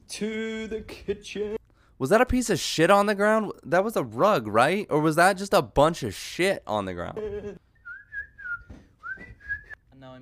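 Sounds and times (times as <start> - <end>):
speech: 0.1 - 7.6
person whistling a short wavering tune: 7.8 - 9.8.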